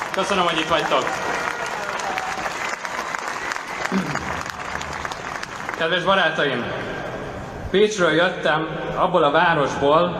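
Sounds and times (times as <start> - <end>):
audience applause from a crowd at a live event: 0.0 - 6.6
speech: 0.2 - 1.5, 5.8 - 7.1, 7.7 - 10.1.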